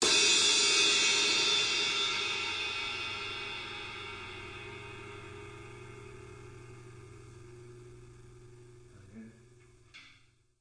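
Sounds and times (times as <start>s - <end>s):
modern live drum kit crash cymbal: 0.0s - 7.1s.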